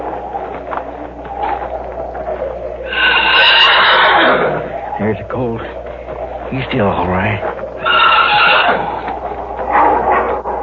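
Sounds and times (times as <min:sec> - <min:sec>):
wolf snarling in a pit: 0:02.8 - 0:05.0, 0:07.8 - 0:10.6
speech: 0:05.1 - 0:05.8, 0:06.5 - 0:07.6.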